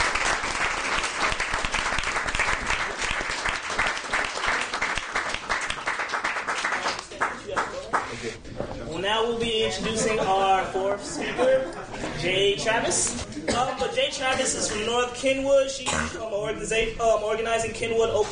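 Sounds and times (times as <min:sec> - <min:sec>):
crowd applauding: 0:00.0 - 0:08.4
speech: 0:09.3 - 0:18.3
laughter: 0:09.6 - 0:14.9.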